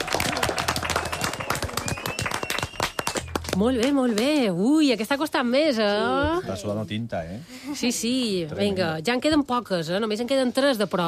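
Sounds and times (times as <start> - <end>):
lively applause from a small crowd: 0.0 - 4.4
speech: 3.6 - 11.0.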